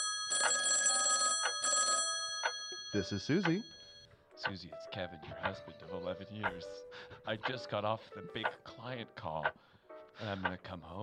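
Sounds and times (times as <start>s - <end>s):
telephone with bright buzzing electronic ring: 0.0s - 4.2s
speech: 2.9s - 3.8s, 4.4s - 11.0s.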